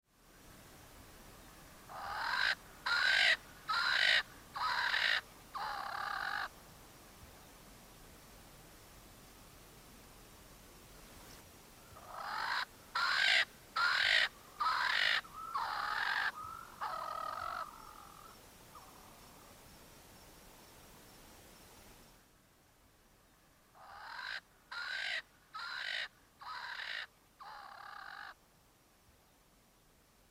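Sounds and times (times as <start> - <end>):
Coqui francolin calling: 1.9 - 6.6, 11.8 - 19.6, 23.8 - 28.4.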